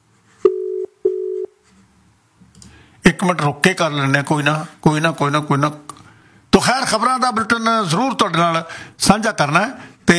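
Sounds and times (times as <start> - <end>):
ringback tone on an unanswered telephone call: 0.4 - 1.5
speech: 3.1 - 5.9, 6.6 - 10.1.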